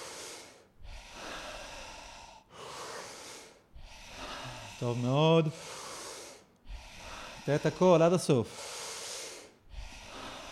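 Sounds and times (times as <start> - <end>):
deep forceful breathing during a breathing exercise: 0.0 - 10.5
speech: 4.8 - 5.8, 7.4 - 8.7.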